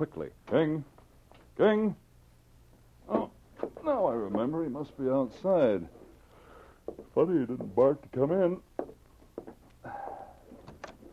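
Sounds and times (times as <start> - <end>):
speech: 0.0 - 1.0, 1.6 - 2.0, 3.8 - 6.0, 6.9 - 10.1
cabin door clicks: 10.6 - 11.1.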